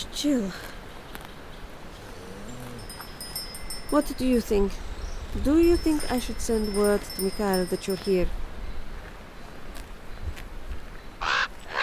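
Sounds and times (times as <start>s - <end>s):
speech: 0.2s - 0.7s, 3.9s - 8.4s
bird cawing in wet woodland after rain: 11.2s - 11.8s.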